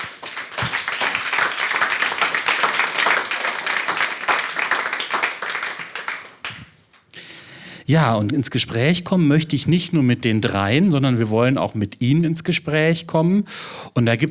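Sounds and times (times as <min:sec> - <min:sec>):
audience applause welcoming panel guests: 0:00.0 - 0:06.7
speech: 0:07.9 - 0:14.2.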